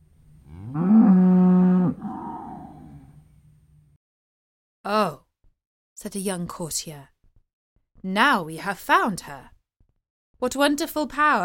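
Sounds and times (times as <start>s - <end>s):
cow lowing: 0.5s - 3.2s
speech: 6.0s - 7.2s, 8.0s - 9.5s, 10.4s - 11.4s.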